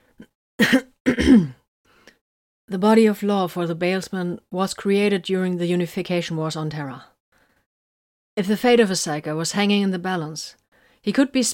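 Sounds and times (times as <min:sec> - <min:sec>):
man clearing his throat: 0:00.6 - 0:01.6
speech: 0:00.6 - 0:01.6, 0:02.7 - 0:07.1, 0:08.4 - 0:11.5.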